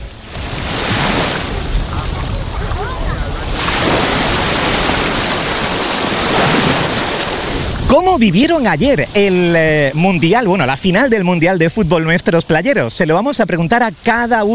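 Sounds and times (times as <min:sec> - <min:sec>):
wind rumble on the microphone: 0:00.0 - 0:10.0
sea waves breaking on the beach of La Charca in Salobreña: 0:00.0 - 0:14.5
wash of surf: 0:00.0 - 0:14.5
speech: 0:08.2 - 0:14.5.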